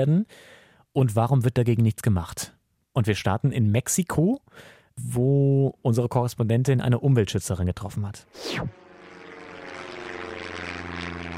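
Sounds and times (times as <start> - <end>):
speech: 0.0 - 8.8
low-flying crop-spraying propeller airplane over soybean fields in Mexico: 8.3 - 11.3
sweeping whoosh of crop-spraying airplane: 8.4 - 9.1.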